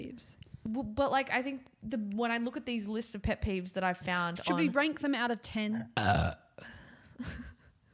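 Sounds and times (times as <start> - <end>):
speech: 0.2 - 7.6
person burping: 6.0 - 6.6.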